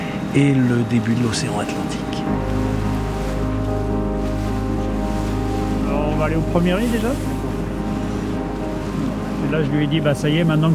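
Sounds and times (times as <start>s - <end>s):
low boat engine drone: 0.0s - 10.7s
sea water washing against a moving boat's bow: 0.0s - 10.7s
wind over the sea: 0.0s - 10.7s
speech: 0.4s - 2.8s, 6.2s - 7.4s, 9.4s - 10.7s.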